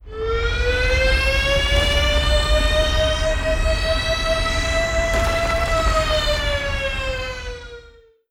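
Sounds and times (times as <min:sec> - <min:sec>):
air raid siren: 0:00.0 - 0:08.2.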